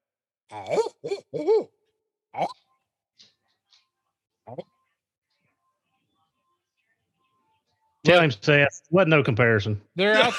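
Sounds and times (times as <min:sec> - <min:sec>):
speech: 0:00.5 - 0:01.7, 0:08.1 - 0:10.3
person imitating barred owl hooting calls: 0:00.5 - 0:01.8.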